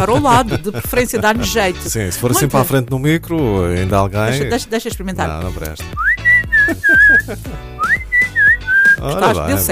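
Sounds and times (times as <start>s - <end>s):
laughter: 0.0s - 1.5s, 2.2s - 2.8s, 6.5s - 7.6s
speech: 0.0s - 8.0s, 9.0s - 9.6s
person whistling a loud wavering melody: 5.9s - 9.2s.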